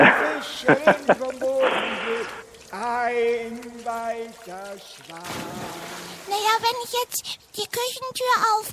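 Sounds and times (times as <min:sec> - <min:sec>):
water splashing from paddling boat: 0:00.0 - 0:07.8
speech: 0:00.7 - 0:01.3, 0:06.6 - 0:08.7.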